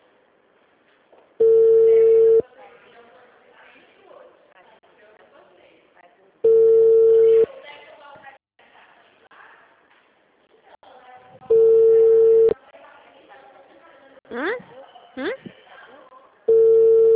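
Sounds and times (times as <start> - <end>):
ringback beeps from a call placed to a mobile phone: 1.4 - 2.4, 6.5 - 7.5, 11.5 - 12.6, 16.5 - 17.1
people talking quietly: 1.4 - 17.1.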